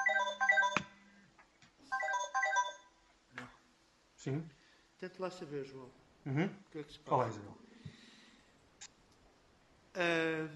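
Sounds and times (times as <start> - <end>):
telephone ringing with a melodic electronic ringtone: 0.0 - 1.0, 1.9 - 2.9
speech: 4.2 - 7.6, 10.0 - 10.5.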